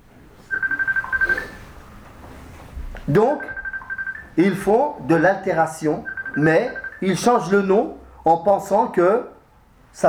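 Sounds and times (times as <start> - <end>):
low hum: 0.0 - 10.0
mobile phone ringing with short high electronic beeps: 0.4 - 2.4, 3.1 - 7.5
speech: 3.1 - 3.6, 4.4 - 9.3.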